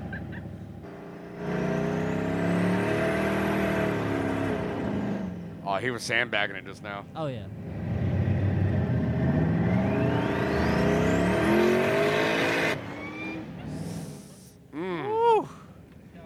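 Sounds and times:
car engine revving and accelerating: 0:00.0 - 0:05.6, 0:07.5 - 0:14.3
speech: 0:05.8 - 0:07.8.

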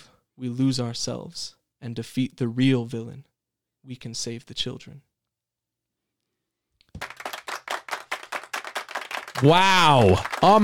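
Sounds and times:
speech: 0:00.4 - 0:05.1, 0:09.4 - 0:10.6
small studio audience clapping after a poem: 0:06.9 - 0:10.6.

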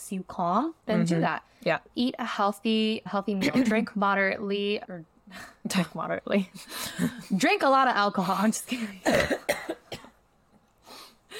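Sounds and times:
speech: 0:00.1 - 0:09.8
sharp coughs: 0:09.0 - 0:10.2.

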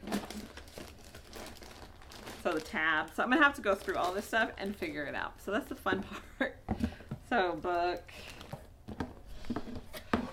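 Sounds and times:
paper wrapping around a box crumpled and torn: 0:00.0 - 0:04.9
speech: 0:02.4 - 0:08.4.

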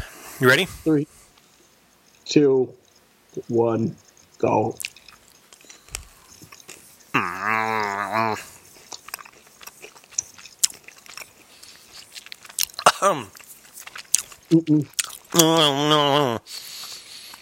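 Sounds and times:
speech: 0:00.4 - 0:01.2, 0:02.3 - 0:02.8, 0:03.4 - 0:04.9, 0:07.2 - 0:08.5, 0:13.0 - 0:13.4, 0:14.5 - 0:16.7
chewing and crunching food: 0:04.7 - 0:17.3
drawn-out low groaning voice: 0:07.2 - 0:08.5, 0:15.4 - 0:16.4.

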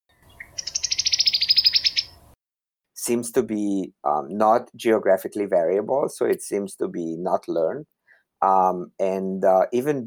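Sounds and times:
cowbird chatter call: 0:00.2 - 0:02.2
speech: 0:03.1 - 0:10.0.

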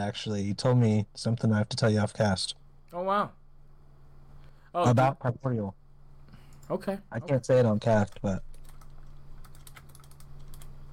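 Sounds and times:
speech: 0:00.0 - 0:03.4, 0:04.7 - 0:05.8, 0:06.7 - 0:08.5
steady low hum: 0:00.0 - 0:10.9
typing on a computer keyboard: 0:08.1 - 0:10.8.

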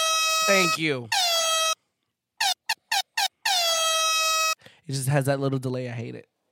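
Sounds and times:
air horn blasts: 0:00.0 - 0:01.8, 0:03.4 - 0:04.6
speech: 0:00.4 - 0:01.2, 0:04.9 - 0:06.3.

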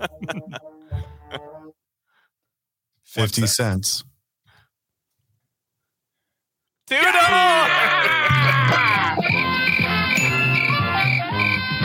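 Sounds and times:
laughter: 0:00.0 - 0:00.7, 0:07.1 - 0:09.8
speech: 0:00.0 - 0:00.7, 0:03.1 - 0:04.1
frogs croaking: 0:09.1 - 0:11.8
crickets chirping: 0:09.2 - 0:11.7.

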